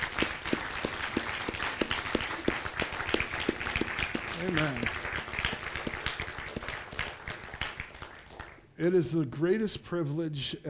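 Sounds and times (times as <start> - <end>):
sharp loud claps: 0.0 - 8.6
standing church audience applauding: 0.0 - 8.6
speech: 4.4 - 5.0, 8.8 - 10.6.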